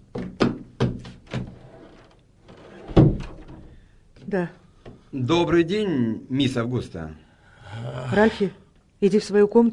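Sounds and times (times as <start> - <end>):
firm knocking on a wooden door: 0.0 - 1.6
speech: 4.3 - 9.7.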